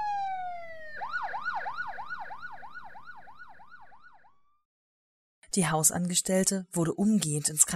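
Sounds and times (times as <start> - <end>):
ambulance siren wailing and yelping: 0.0 - 4.4
speech: 5.5 - 7.7.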